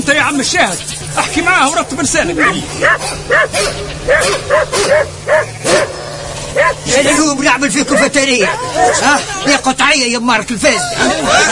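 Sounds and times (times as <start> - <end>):
steady low hum: 0.0 - 9.7
speech: 0.3 - 5.9, 6.6 - 11.4
laughter: 1.0 - 4.2, 6.9 - 9.8, 10.6 - 11.4
dog barking in short sharp yaps: 2.4 - 9.2.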